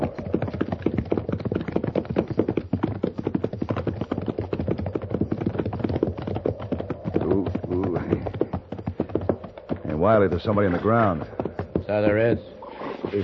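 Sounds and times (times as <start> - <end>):
horse hooves clip-clopping: 0.0 - 13.2
speech: 10.0 - 12.5.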